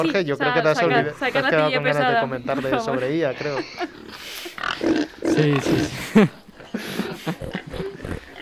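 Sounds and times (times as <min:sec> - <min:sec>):
laughter: 0:00.0 - 0:04.6, 0:05.3 - 0:08.3
speech: 0:00.0 - 0:07.6
pigs oinking and grunting: 0:03.6 - 0:08.3.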